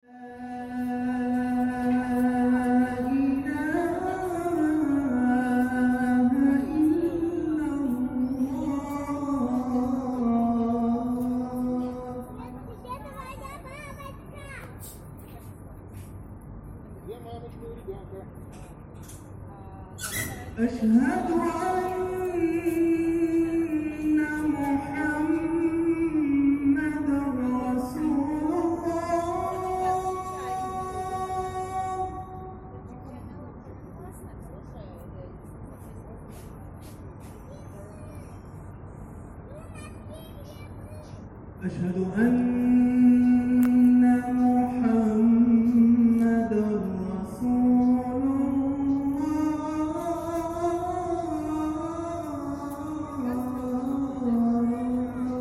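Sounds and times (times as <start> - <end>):
person singing at a mosque in Kazan: 0.0 - 12.8, 20.1 - 33.0, 41.6 - 55.3.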